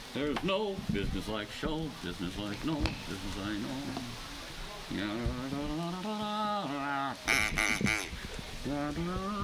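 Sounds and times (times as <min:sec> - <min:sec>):
speech: 0:00.2 - 0:04.3, 0:04.9 - 0:08.1, 0:08.7 - 0:09.4
person imitating duck quacks: 0:06.9 - 0:08.1.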